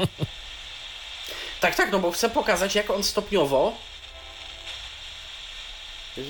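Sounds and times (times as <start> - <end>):
laughter: 0.0 - 0.3
speech: 0.0 - 0.5, 1.6 - 3.9
radio receiver static hissing while being tuned: 0.0 - 6.2.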